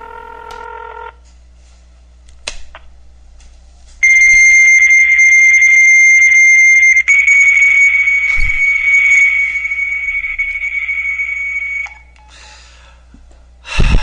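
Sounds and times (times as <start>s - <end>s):
chord of electronic telephone line beeps: 4.0s - 12.1s
loud steady high-pitched telephone dual tone: 4.0s - 12.2s.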